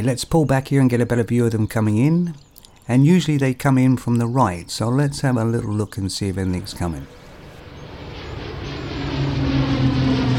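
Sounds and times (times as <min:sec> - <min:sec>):
speech: 0:00.0 - 0:07.2
propeller aircraft flying past: 0:06.4 - 0:10.3.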